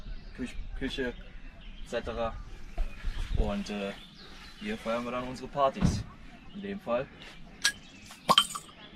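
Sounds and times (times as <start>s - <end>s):
speech: 0.4s - 2.6s, 3.3s - 7.4s
glasses clinking in a toast at a party under a camper's awning: 7.6s - 8.8s.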